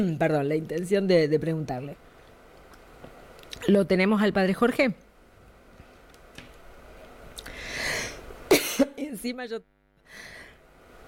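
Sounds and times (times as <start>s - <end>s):
speech: 0.0s - 2.1s, 3.7s - 5.0s, 9.2s - 10.3s
breathy inhale: 7.5s - 8.3s, 10.0s - 10.7s
person coughing: 8.5s - 9.1s.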